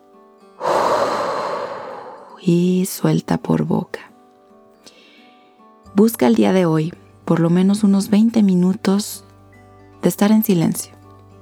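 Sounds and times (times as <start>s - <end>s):
deep inhale through the nose: 0.6s - 2.4s, 4.8s - 5.6s
speech: 2.4s - 4.1s, 6.0s - 9.3s, 10.0s - 11.0s.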